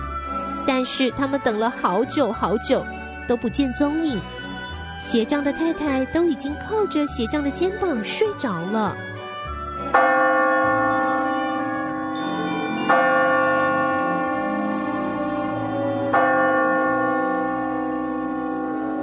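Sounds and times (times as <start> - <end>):
speech: 0.7 - 4.4, 5.0 - 9.1, 9.9 - 10.3
heavy church bell tolling: 9.8 - 19.0.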